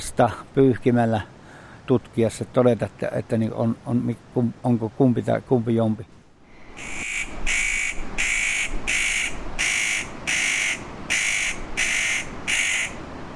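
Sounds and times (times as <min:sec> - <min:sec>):
speech: 0:00.0 - 0:06.2
spotted nutcracker giving harsh rasping calls: 0:06.8 - 0:13.0.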